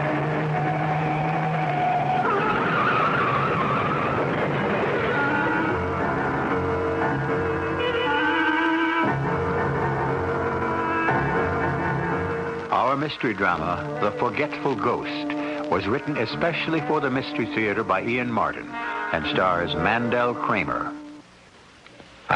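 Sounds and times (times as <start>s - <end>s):
car tires screeching and skidding, swerving off the road: 0.0s - 12.8s
car engine roaring: 0.0s - 16.5s
speech: 13.0s - 21.0s.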